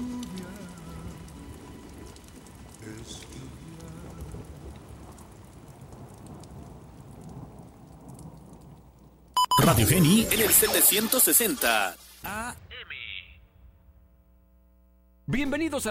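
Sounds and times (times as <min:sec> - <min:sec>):
raindrops pattering on a surface: 0:00.0 - 0:12.3
speech: 0:09.7 - 0:12.4, 0:15.3 - 0:15.8.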